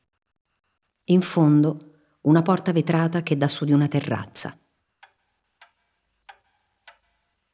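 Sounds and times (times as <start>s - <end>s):
speech: 1.1s - 4.6s
large Flemish clock ticking: 5.0s - 7.5s.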